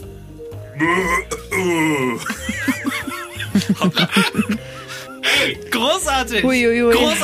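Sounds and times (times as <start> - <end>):
person vocally imitating a burping cow: 0.8 - 2.3
speech: 0.8 - 2.3, 3.8 - 4.6, 5.4 - 7.2
laughter: 1.9 - 5.6.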